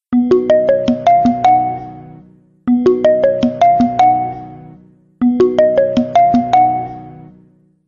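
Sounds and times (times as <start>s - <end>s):
Nokia message ringtone: 0.2s - 2.1s, 2.7s - 7.2s.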